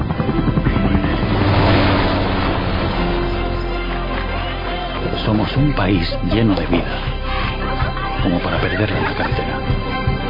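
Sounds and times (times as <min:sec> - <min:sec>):
helicopter rotor drone: 0:00.0 - 0:04.7
speech: 0:05.3 - 0:07.5, 0:08.2 - 0:09.9
laughter: 0:05.8 - 0:10.1.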